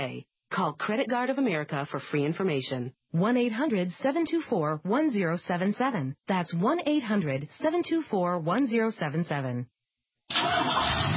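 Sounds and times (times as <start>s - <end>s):
speech: 0.0s - 11.1s
car engine starting: 10.3s - 11.1s.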